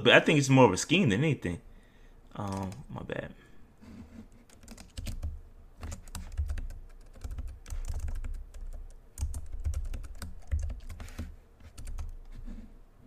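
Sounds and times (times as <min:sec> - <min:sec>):
speech: 0:00.0 - 0:01.7, 0:02.4 - 0:03.4
typing a password on a computer keyboard: 0:04.5 - 0:12.2.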